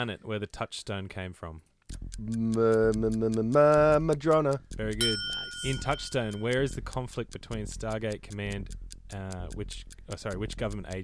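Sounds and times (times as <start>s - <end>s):
speech: 0.0s - 11.0s
ticking clock timer: 1.8s - 11.0s
person humming: 2.2s - 3.6s.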